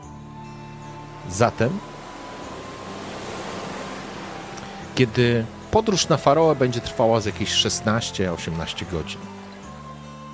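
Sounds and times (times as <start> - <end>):
open-sea waves: 0.0 - 10.3
wind at sea: 0.0 - 10.3
speech: 1.2 - 1.9, 5.0 - 9.4.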